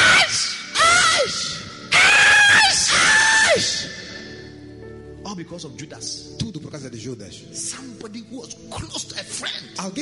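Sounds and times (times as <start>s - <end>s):
voice imitating a man screaming in pain as he is nailed to a cross: 0.0s - 4.3s
speech: 5.5s - 10.0s.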